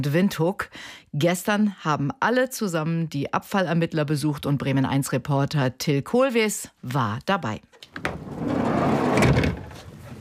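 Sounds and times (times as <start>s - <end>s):
speech: 0.0s - 8.3s
drawers filled with gloves pulled open in a work vehicle: 7.9s - 10.1s.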